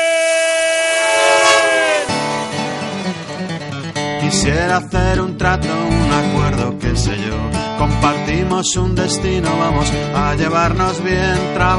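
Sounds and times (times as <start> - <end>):
train running on rails: 0.1 - 4.2
speech: 4.3 - 11.7.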